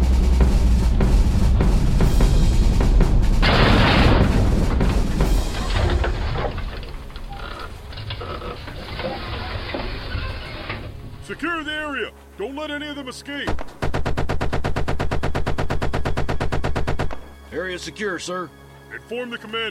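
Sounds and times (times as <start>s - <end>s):
harsh blast: 0.0s - 5.9s
heavy low rumbling and booms: 0.0s - 10.1s
speech: 12.5s - 13.8s, 17.6s - 19.6s
rapid bursts of gunfire: 13.8s - 17.1s.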